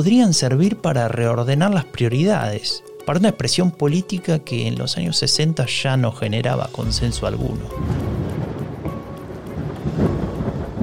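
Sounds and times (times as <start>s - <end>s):
speech: 0.0s - 8.2s
low rumbling undertone: 6.8s - 9.1s
first drops of rain pattering: 6.8s - 10.8s.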